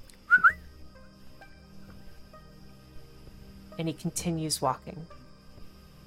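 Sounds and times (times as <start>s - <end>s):
short two-note whistle from a person: 0.3s - 0.6s
speech: 3.8s - 5.2s.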